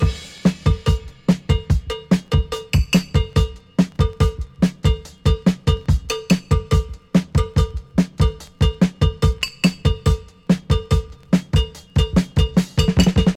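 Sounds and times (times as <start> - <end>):
breakbeat drum loop with kick tuned to B: 0.0 - 13.3.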